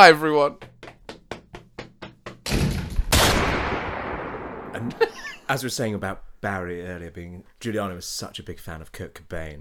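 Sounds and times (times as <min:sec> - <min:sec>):
speech: 0:00.0 - 0:00.7, 0:04.7 - 0:09.6
sharp knocks: 0:00.6 - 0:03.9
heavy door closing: 0:02.4 - 0:03.1
loud gunshot crack with long tail: 0:02.5 - 0:04.8.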